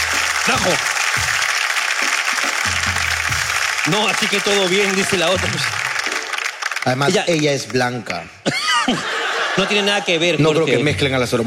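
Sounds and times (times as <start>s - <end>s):
applause: 0.0s - 8.3s
speech: 0.5s - 1.4s, 3.8s - 5.8s, 6.8s - 11.4s
laughter: 8.4s - 10.9s.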